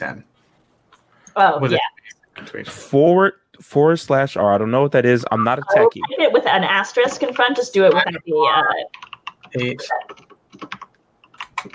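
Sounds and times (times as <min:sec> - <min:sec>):
speech: 0:00.0 - 0:00.3, 0:01.4 - 0:10.8
typing on a computer keyboard: 0:08.9 - 0:11.7.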